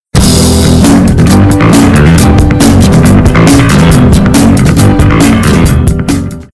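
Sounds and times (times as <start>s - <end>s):
outro music: 0.1s - 6.5s.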